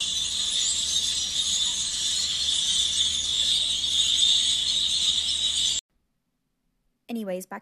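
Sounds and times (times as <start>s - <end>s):
huge flock of grackles chattering and squeaking: 0.0s - 5.8s
speech: 7.1s - 7.6s.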